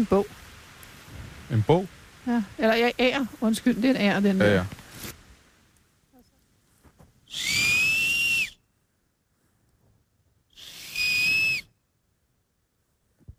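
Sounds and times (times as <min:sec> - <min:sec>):
speech: 0:00.0 - 0:00.4, 0:01.5 - 0:04.8
flute-like whistling blown on a nut shell: 0:07.3 - 0:08.6, 0:10.5 - 0:11.8.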